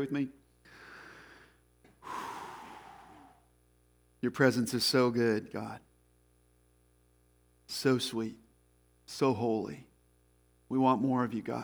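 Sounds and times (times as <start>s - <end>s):
speech: 0.0s - 0.4s, 4.2s - 5.9s, 7.7s - 8.4s, 9.1s - 9.9s, 10.7s - 11.6s
deep breath taken slowly: 0.7s - 3.5s.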